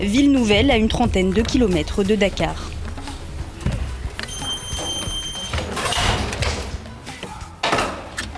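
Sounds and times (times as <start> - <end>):
speech: 0.0 - 2.8
heavy secured door clunking open: 0.5 - 7.0
heavy door scraping and thudding shut: 4.7 - 6.8.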